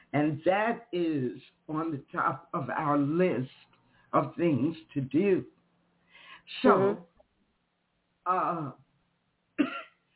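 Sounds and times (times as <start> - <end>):
speech: 0.1 - 5.6, 6.5 - 7.1, 8.2 - 8.8
person coughing from burning incense: 9.6 - 10.0.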